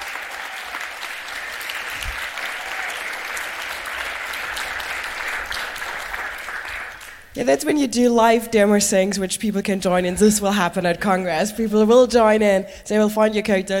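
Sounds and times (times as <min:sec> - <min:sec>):
room full of people applauding: 0:00.0 - 0:07.3
speech: 0:07.4 - 0:13.7.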